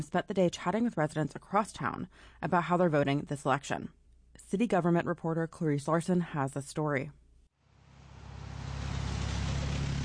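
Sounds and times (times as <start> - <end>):
speech: 0.0 - 7.2
car passing on a rain-wet road at the Juneau Douglas Bridge intersection in Juneau: 7.7 - 10.0
tires hissing through water: 7.8 - 10.0.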